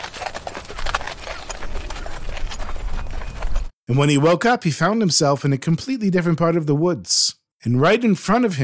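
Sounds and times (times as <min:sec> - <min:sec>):
horse hooves clip-clopping while pulling a cart into a forest: 0:00.0 - 0:03.8
speech: 0:03.9 - 0:08.6.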